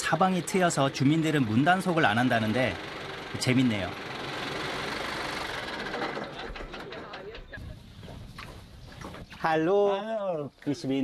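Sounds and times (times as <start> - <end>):
tractor engine chugging with a knocking rumble: 0.0 - 8.0
speech: 0.1 - 4.1, 9.4 - 11.0.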